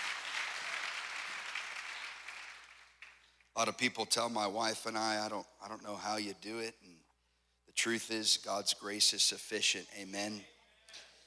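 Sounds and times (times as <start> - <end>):
crowd applauding: 0.0 - 3.4
speech: 3.6 - 7.1, 7.7 - 11.0.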